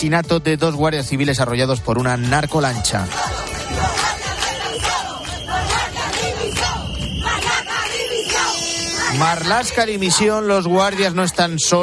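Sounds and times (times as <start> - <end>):
speech: 0.0 - 3.4, 9.2 - 11.8
large crowd shouting and chanting at an outdoor protest rally: 2.1 - 11.8.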